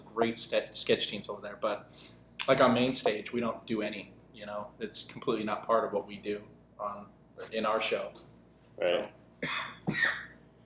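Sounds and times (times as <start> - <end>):
speech: 0.2 - 10.2
loud rasping coughs into a microphone: 9.4 - 10.4.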